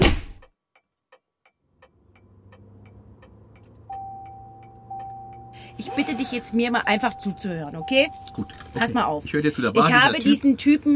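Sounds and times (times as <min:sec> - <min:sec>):
light ticks in a car interior: 0:00.7 - 0:05.4
car engine rumble as a driver sets off: 0:01.6 - 0:10.8
sustained electronic tone in a car interior: 0:04.0 - 0:08.9
speech: 0:05.8 - 0:10.9.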